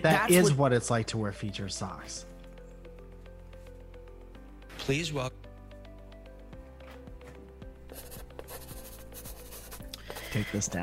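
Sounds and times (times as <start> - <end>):
speech: 0.0 - 2.3, 4.8 - 5.4, 10.4 - 10.8
pencil drawing strokes of a pair of socks by hand: 7.8 - 10.8.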